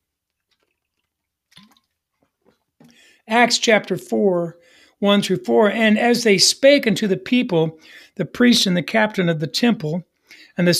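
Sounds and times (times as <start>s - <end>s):
person drinking a glass of water: 0.0s - 3.2s
speech: 3.3s - 10.7s.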